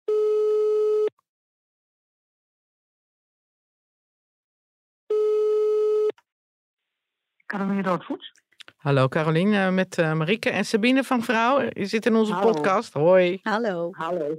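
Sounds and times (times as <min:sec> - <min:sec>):
phone ringback tone while placing a call: 0:00.1 - 0:01.1, 0:05.1 - 0:06.1
speech: 0:07.5 - 0:14.3.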